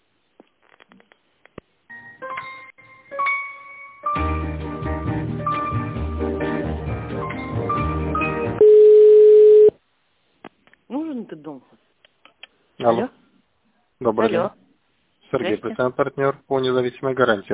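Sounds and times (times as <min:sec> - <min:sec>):
telephone line beeps while a call is transferred: 0:08.6 - 0:09.7
speech: 0:11.3 - 0:11.9, 0:12.8 - 0:13.2, 0:14.0 - 0:14.6, 0:15.3 - 0:17.5.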